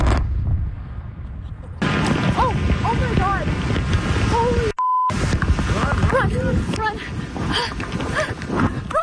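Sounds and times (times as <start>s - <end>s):
volcanic explosion blast: 0.0s - 8.0s
deep rolling volcanic rumble: 0.0s - 8.9s.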